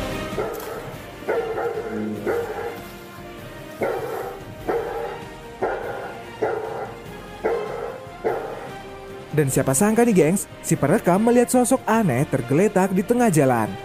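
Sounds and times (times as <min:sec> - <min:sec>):
several dogs barking noisily: 0:00.2 - 0:09.2
speech: 0:09.4 - 0:13.8.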